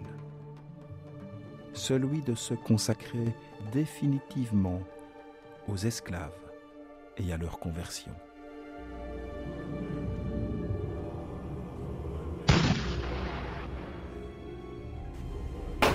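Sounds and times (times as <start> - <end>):
speech: 1.8 - 5.0, 5.7 - 6.4, 7.2 - 8.3
steady low rumble: 8.8 - 15.8
artillery salvos marking a fleet's arrival in a harbour: 12.5 - 14.1.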